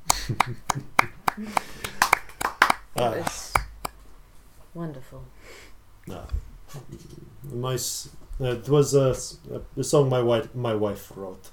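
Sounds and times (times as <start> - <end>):
hands clapping: 0.0 - 4.0
speech: 0.3 - 1.9, 3.0 - 3.5, 4.8 - 11.5.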